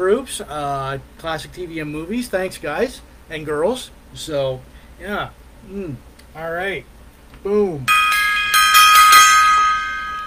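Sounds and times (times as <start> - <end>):
speech: 0.0 - 8.0
gong being struck: 7.9 - 10.2.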